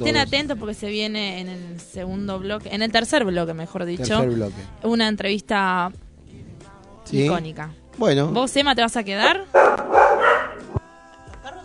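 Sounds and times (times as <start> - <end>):
speech: 0.0 - 6.0, 7.1 - 9.6
dogs barking: 9.2 - 10.8.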